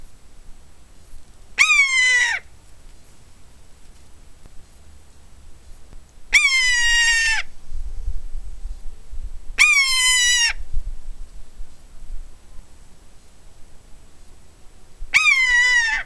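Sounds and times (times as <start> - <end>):
low rumbling background noise: 0.0 - 16.0
common buzzard Buteo buteo mewing calls: 1.6 - 2.5, 6.4 - 7.5, 15.2 - 16.0.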